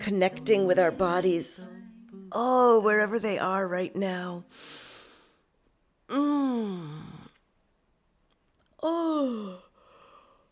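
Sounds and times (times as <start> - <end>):
speech: 0.0 - 4.8, 6.1 - 7.1, 8.8 - 9.6
yawning sighs during a stretch: 6.1 - 7.4, 8.8 - 10.4.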